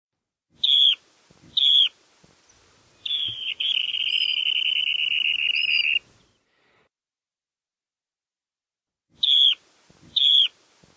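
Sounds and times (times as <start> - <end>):
bird whistling: 0.6 - 1.0, 3.0 - 6.0, 9.2 - 9.6, 10.2 - 10.5.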